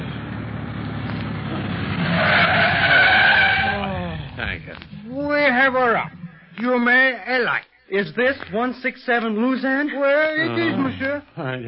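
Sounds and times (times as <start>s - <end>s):
speeding taxi tires squealing while skidding to a stop: 0.0s - 6.4s
taxi engine rumble: 0.0s - 6.6s
speech: 7.4s - 11.6s.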